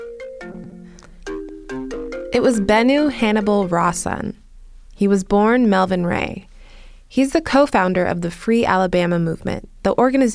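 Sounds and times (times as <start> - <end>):
phone ringing with an electronic melodic ringtone: 0.0 - 3.8
speech: 2.4 - 4.4, 5.0 - 6.5, 7.1 - 10.3.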